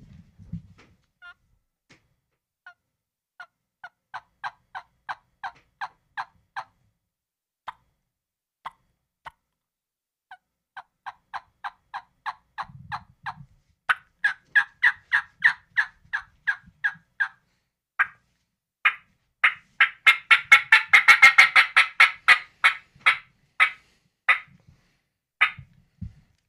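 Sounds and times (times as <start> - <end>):
turkey call imitating a hen's fly-down cackle: 13.3 - 17.4, 18.9 - 24.5, 25.4 - 25.6.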